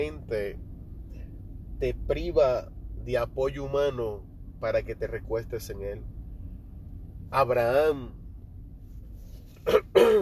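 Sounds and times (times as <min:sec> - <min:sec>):
speech: 0:00.0 - 0:00.7, 0:01.8 - 0:06.1, 0:07.3 - 0:08.2
short cough: 0:09.6 - 0:10.1
throat clearing: 0:09.7 - 0:10.1.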